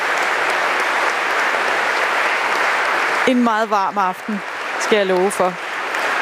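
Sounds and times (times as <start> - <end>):
large audience applauding musicians after a concert in Holmens Kirke church: 0.0 - 6.2
speech: 3.3 - 5.6.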